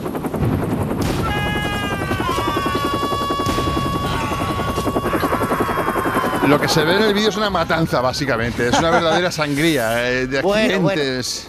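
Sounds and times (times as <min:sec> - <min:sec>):
helicopter with rotor chop and turbine whine played from a video: 0:00.0 - 0:11.4
laughter: 0:01.6 - 0:11.2
speech: 0:06.5 - 0:11.4.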